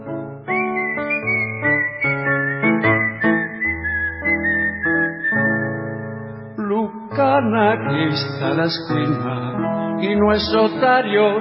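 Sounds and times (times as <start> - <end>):
person whistling a lilting tango melody: 0.2 - 7.2
speech: 7.4 - 11.3.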